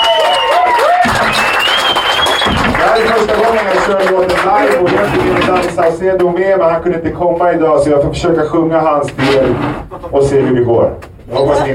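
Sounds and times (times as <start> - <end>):
scattered cheers and whistles from a live audience: 0.0 - 3.6
live audience loud sustained applause: 0.0 - 5.8
speech: 5.8 - 11.7.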